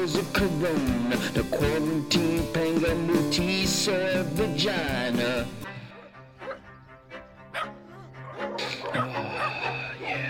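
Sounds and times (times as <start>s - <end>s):
speech: 0.0s - 5.7s
dogs barking: 5.8s - 10.2s
dogs whimpering: 5.9s - 6.7s, 7.5s - 10.2s.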